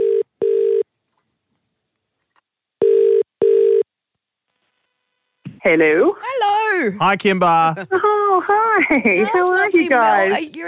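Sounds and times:
double-burst phone ringback tone: 0.0 - 0.8, 2.8 - 3.8
speech: 5.6 - 10.6.

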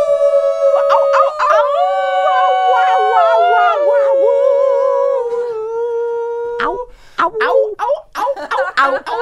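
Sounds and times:
group of people howling in siren-like notes: 0.0 - 6.7
people's shorter scattered yips and whoops: 0.0 - 6.8
laughter: 8.2 - 9.2.

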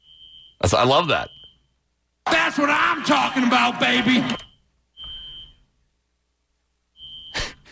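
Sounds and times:
loud shrill electronic beeps: 0.0 - 1.8, 4.2 - 5.7, 7.0 - 7.4
speech: 0.6 - 1.4, 2.5 - 4.4.

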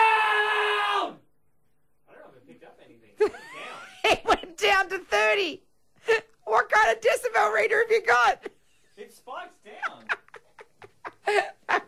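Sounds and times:
man screaming one drawn-out word: 0.0 - 1.2
speech: 4.8 - 10.0, 11.3 - 11.8.

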